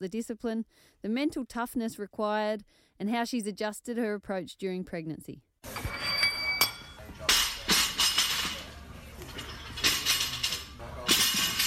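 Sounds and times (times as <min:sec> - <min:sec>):
speech: 0:00.0 - 0:06.0
gym equipment banging and crashing during training in a large room: 0:05.7 - 0:11.6.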